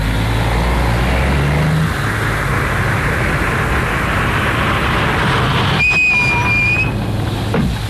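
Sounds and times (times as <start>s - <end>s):
road noise from taxi driving: 0.0s - 7.8s
taxi engine rumbling while driving: 0.0s - 7.8s
high-pitched squeal: 1.0s - 7.3s.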